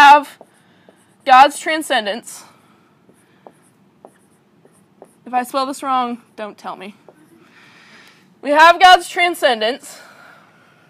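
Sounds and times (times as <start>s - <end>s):
writing on a board for a diagram: 0.0s - 1.4s, 3.1s - 5.4s
speech: 1.3s - 2.5s, 5.3s - 7.1s, 8.4s - 10.1s.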